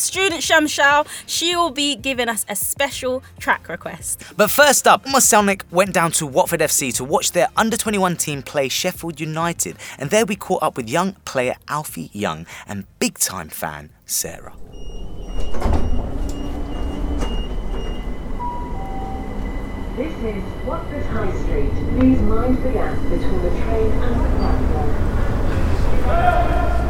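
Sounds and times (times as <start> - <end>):
recorded station announcement voice: 0.0 - 14.6, 20.0 - 25.4
speech: 0.0 - 16.0, 20.0 - 25.2, 26.1 - 26.8
train door chimes: 14.5 - 22.8
train doors sliding: 14.6 - 20.7
train idling at a station platform: 16.1 - 26.0.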